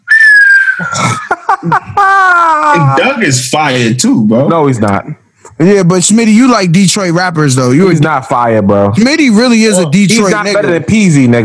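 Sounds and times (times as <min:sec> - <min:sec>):
loud whistle sliding downward: 0:00.0 - 0:00.9
laughter: 0:00.8 - 0:03.2, 0:09.8 - 0:11.3
speech: 0:01.6 - 0:11.4.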